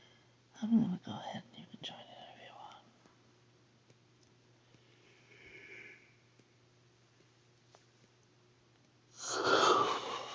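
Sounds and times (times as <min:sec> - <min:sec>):
speech: 0:00.6 - 0:02.1
soft breath: 0:04.6 - 0:06.4, 0:09.1 - 0:10.3
person yawning with a long breathy exhale: 0:09.2 - 0:10.3.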